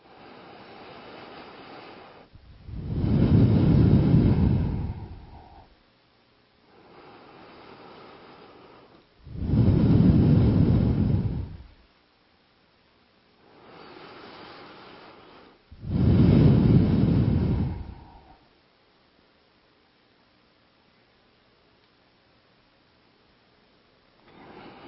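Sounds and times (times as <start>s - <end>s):
slow deliberate breathing in and out through the nostrils: 0.0s - 5.8s, 6.7s - 11.8s, 13.4s - 18.5s, 24.2s - 24.8s.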